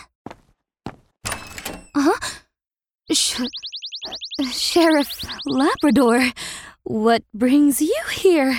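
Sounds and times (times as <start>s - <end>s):
rushing scraping noise of a door being pulled open: 1.3s - 2.0s
speech: 3.1s - 8.5s.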